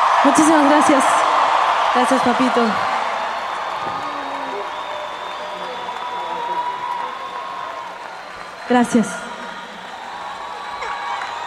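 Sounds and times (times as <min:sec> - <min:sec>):
audience applause: 0:00.0 - 0:11.4
speech: 0:00.2 - 0:01.2, 0:02.0 - 0:02.9, 0:08.7 - 0:09.3
faint whoops: 0:02.9 - 0:08.0, 0:09.4 - 0:11.4.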